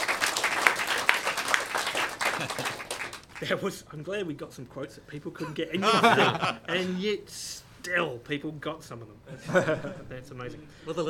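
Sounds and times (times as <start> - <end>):
audience applause: 0.0 - 3.4
laughter: 2.0 - 3.1, 5.4 - 6.9, 9.3 - 10.3
speech: 2.4 - 2.8, 3.4 - 11.0.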